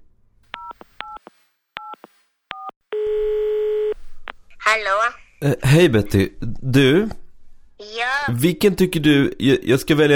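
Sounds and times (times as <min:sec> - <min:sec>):
telephone ringing tone: 0:02.5 - 0:04.0
speech: 0:04.7 - 0:07.2, 0:08.2 - 0:10.1.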